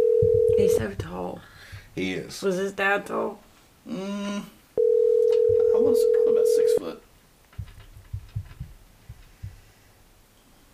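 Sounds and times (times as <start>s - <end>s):
soft low thumps on a telephone line: 0.2s - 2.3s, 5.3s - 6.1s, 7.5s - 9.7s
speech: 0.6s - 4.5s, 5.5s - 7.1s.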